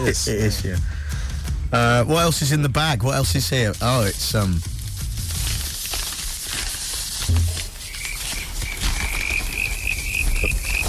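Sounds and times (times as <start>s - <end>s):
speech: 0.0s - 1.1s, 1.7s - 4.8s
veggie sausages sizzling: 3.3s - 10.8s.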